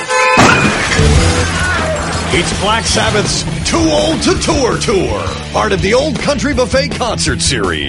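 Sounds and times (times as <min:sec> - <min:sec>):
car crash with sharp metallic smash: 0:00.4 - 0:05.7
car crash debris rattling and scraping: 0:00.6 - 0:06.0
speech: 0:02.4 - 0:07.8.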